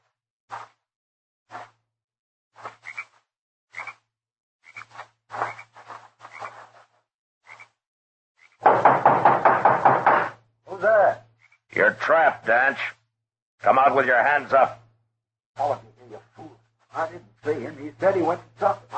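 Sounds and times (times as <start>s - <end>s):
hollow knocks on wooden door of small adobe hut: 8.6s - 10.4s
speech: 12.1s - 13.0s, 13.6s - 14.8s, 17.0s - 18.9s.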